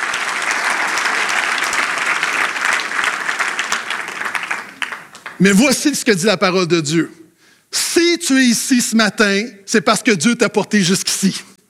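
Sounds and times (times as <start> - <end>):
large group clapping: 0.0 - 5.8
speech: 5.4 - 11.5.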